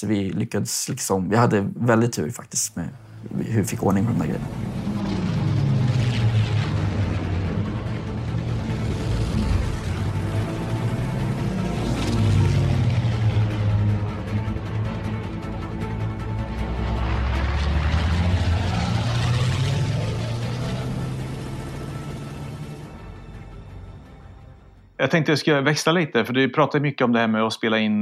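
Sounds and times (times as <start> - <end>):
speech: 0.0 - 4.8, 25.1 - 28.0
boat engines rumbling on a river: 2.8 - 25.0.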